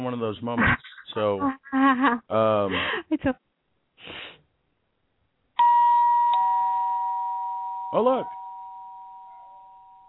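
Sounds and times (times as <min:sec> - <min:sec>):
speech: 0:00.0 - 0:03.4, 0:07.9 - 0:08.4
two-note ding-dong doorbell chime: 0:05.6 - 0:10.0.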